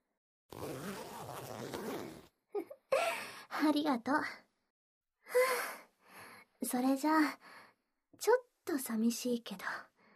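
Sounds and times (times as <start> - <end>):
dress back zipper being pulled up: 0.5 - 2.3
speech: 3.6 - 4.4, 6.6 - 7.6, 8.2 - 9.9.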